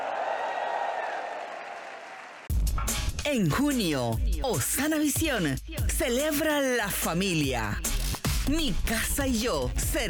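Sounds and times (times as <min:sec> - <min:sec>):
large church audience cheering and shouting: 0:00.0 - 0:02.3
steady applause: 0:00.0 - 0:02.5
speech: 0:03.3 - 0:07.9, 0:08.5 - 0:10.0.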